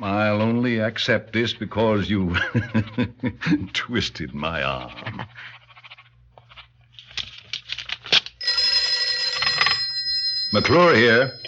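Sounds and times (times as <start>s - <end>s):
speech: 0.0s - 5.6s, 10.5s - 11.4s
laughter: 2.3s - 3.8s
telephone bell ringing: 8.4s - 11.4s.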